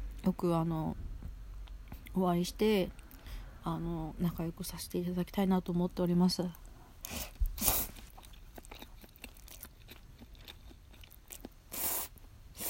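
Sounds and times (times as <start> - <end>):
speech: 0.2 - 1.0, 2.2 - 3.0, 3.6 - 7.2
person chewing while eating cod roe pasta: 7.0 - 12.6.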